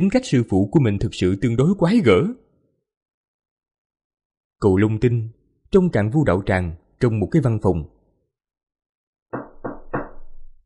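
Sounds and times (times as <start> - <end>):
speech: 0.0 - 2.4, 4.6 - 8.0
firm knocking on a door: 9.3 - 10.6.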